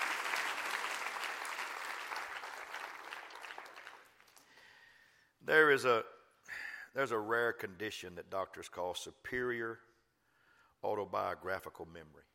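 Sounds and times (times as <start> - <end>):
audience clapping hands: 0.0 - 4.6
speech: 5.5 - 9.9, 10.8 - 12.3.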